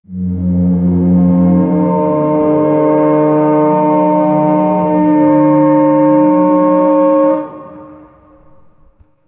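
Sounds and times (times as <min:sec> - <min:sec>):
deep resounding reverberating horn-like tone: 0:00.0 - 0:09.2.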